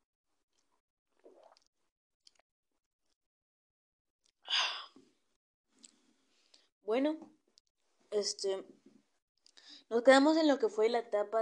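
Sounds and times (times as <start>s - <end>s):
sipping and swallowing water: 0.5s - 2.4s
faint mouth sounds: 1.2s - 1.7s
speech: 6.9s - 7.4s, 8.1s - 8.8s, 9.9s - 11.4s.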